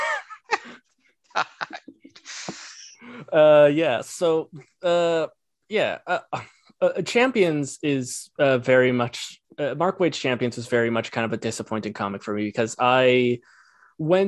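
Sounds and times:
laughter: 0.0s - 0.8s, 1.4s - 3.0s
person imitating a sniff: 2.1s - 3.0s
speech: 3.3s - 14.2s.

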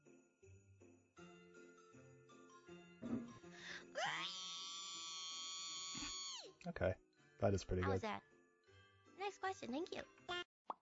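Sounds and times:
person performing a scream on request: 4.0s - 6.5s
speech: 6.6s - 8.3s, 9.3s - 10.4s.

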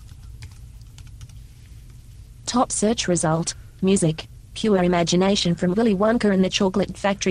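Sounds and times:
keyboard typing a short word: 0.0s - 1.4s
steady low hum: 0.0s - 7.2s
speech: 2.5s - 7.2s.

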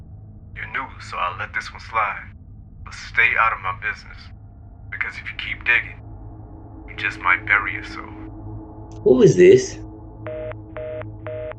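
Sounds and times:
low hum: 0.0s - 8.3s
speech: 0.8s - 4.4s, 5.0s - 6.0s, 7.0s - 8.2s, 9.0s - 9.8s
touch-tone beeps of a phone being dialed: 10.3s - 11.5s.

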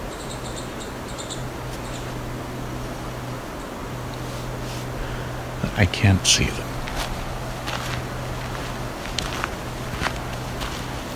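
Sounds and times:
low constant hum: 0.0s - 11.1s
steady outdoor hiss: 0.0s - 11.1s
two green warblers chirping and twittering while fighting: 0.0s - 11.1s
speech: 5.7s - 6.7s.

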